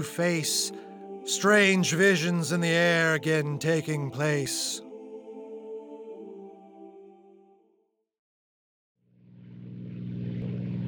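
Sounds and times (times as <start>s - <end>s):
speech: 0.0s - 4.8s
airplane engine drone heard from inside the cockpit: 9.2s - 10.8s.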